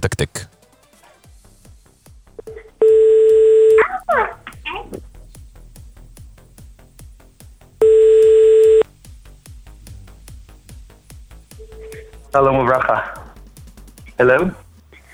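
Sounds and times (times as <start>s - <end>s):
speech: 0.0s - 0.5s, 12.4s - 13.2s, 14.2s - 14.6s
telephone dialing tones: 2.8s - 3.8s, 7.8s - 8.8s
fast regular ticking: 3.2s - 15.1s.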